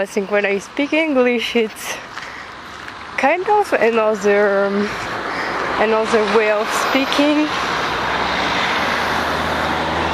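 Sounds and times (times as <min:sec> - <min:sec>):
speech: 0:00.0 - 0:02.2, 0:03.2 - 0:05.2, 0:05.8 - 0:07.6
road traffic from passing cars: 0:00.0 - 0:10.1.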